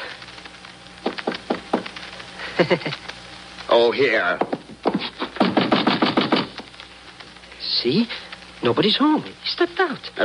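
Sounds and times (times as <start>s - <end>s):
knuckles knocking on a wooden door: 1.0s - 1.9s, 4.4s - 6.5s
speech: 2.6s - 3.1s, 3.7s - 4.6s, 7.8s - 10.2s.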